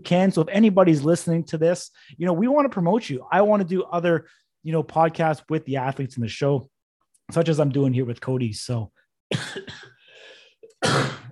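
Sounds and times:
speech: 0:00.0 - 0:06.7, 0:07.3 - 0:09.9
dry coughs: 0:09.3 - 0:11.3
throat clearing: 0:10.6 - 0:11.3.

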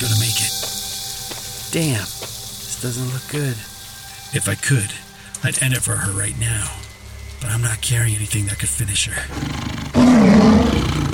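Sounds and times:
speech: 0:01.7 - 0:03.7, 0:04.3 - 0:06.8, 0:07.4 - 0:10.6
mountain lion roaring: 0:09.3 - 0:11.1.

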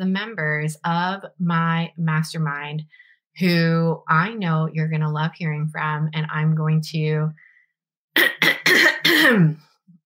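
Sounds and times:
speech: 0:00.0 - 0:07.5, 0:08.2 - 0:09.7
woman clearing her throat: 0:08.2 - 0:09.7.

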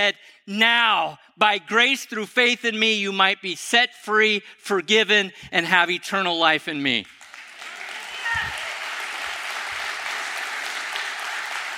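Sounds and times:
speech: 0:00.0 - 0:07.2
large audience clapping: 0:07.0 - 0:11.7.

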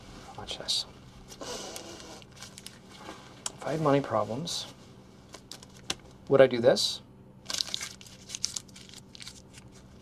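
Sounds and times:
speech: 0:00.4 - 0:01.7, 0:03.6 - 0:04.8, 0:06.3 - 0:07.0
one-dollar paper bill being crumpled: 0:07.4 - 0:09.9.

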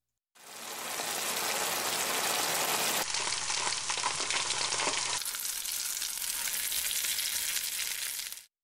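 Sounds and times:
bacon frying held next to a microphone: 0:00.4 - 0:08.5.

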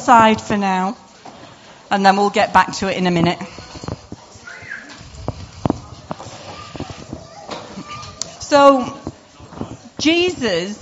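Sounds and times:
speech: 0:00.0 - 0:01.0, 0:01.9 - 0:03.5, 0:08.5 - 0:09.0, 0:10.0 - 0:10.8
faint murmur of voices: 0:00.0 - 0:10.8
donkey hooves clip-clopping: 0:03.1 - 0:10.8.

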